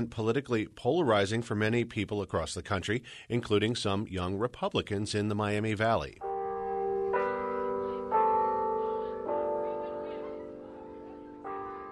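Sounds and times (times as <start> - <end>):
speech: 0.0 - 6.3
noonday church bell tolling on a university campus: 6.2 - 11.9.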